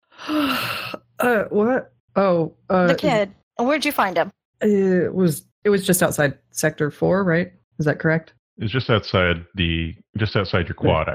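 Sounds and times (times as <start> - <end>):
loud drawn-out deliberate yawn: 0.2 - 1.6
speech: 0.3 - 11.1.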